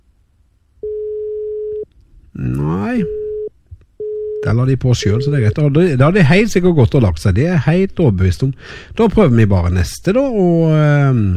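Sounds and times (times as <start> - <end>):
telephone ringback tone on an outgoing call: 0.8 - 1.8, 3.0 - 4.5
speech: 2.4 - 3.2, 4.5 - 11.3.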